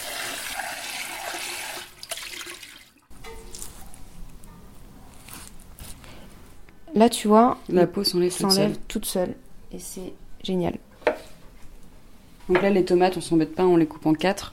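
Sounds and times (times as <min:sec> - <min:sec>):
cold running tap water rinsing tomatoes: 0:00.0 - 0:03.1
speech: 0:07.0 - 0:10.9, 0:12.5 - 0:14.5.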